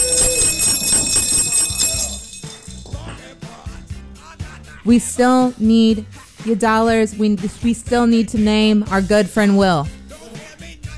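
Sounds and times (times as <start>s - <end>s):
bright jingling bells in a donation sound effect: 0.0s - 4.0s
speech: 4.8s - 10.0s.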